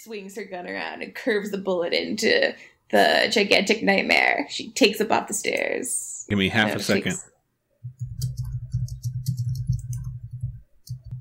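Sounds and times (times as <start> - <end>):
speech: 0.0 - 7.3
keyboard typing: 7.8 - 11.1.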